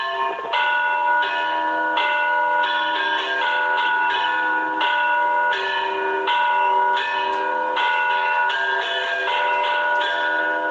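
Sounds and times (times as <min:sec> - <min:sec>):
church bells tolling a death knell for a child: 0:00.0 - 0:10.7.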